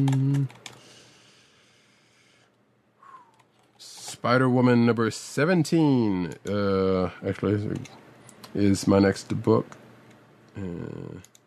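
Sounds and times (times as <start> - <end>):
speech: 0.0 - 0.6, 4.2 - 9.8, 10.6 - 11.3
typing on a computer keyboard: 0.0 - 0.8.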